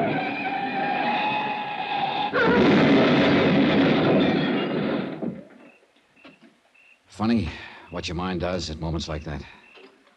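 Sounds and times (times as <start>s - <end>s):
car tire screeching on a curve with a tire shot out: 0.0s - 2.6s
car slamming into granite cliffs: 0.0s - 5.6s
speech: 7.2s - 9.6s.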